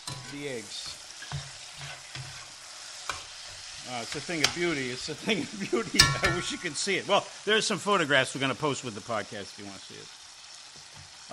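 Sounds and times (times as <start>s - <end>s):
utensil scraping against the frying pan: 0.0s - 5.1s
peppers sizzling while stirred in a frying pan: 0.0s - 11.3s
speech: 0.3s - 1.9s, 3.9s - 10.2s.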